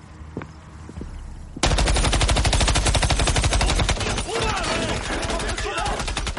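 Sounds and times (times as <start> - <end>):
AR-15 rifle automatic fire aimed at off-road vehicles on a roadway: 1.6 - 6.3.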